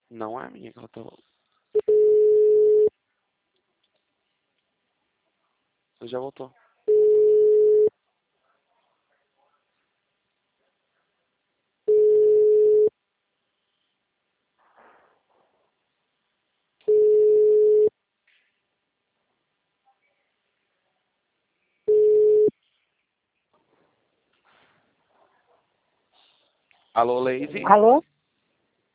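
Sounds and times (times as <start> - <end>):
speech: 0.1 - 1.8, 6.0 - 7.0, 27.0 - 28.1
telephone busy tone beeps after a dropped call: 1.8 - 2.9, 6.9 - 7.9, 11.9 - 12.9, 16.9 - 17.9, 21.9 - 22.5.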